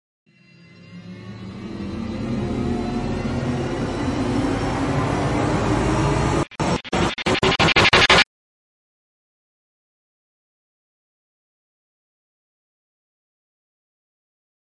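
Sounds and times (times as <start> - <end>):
stuttering rising synth: 0.7 - 8.3.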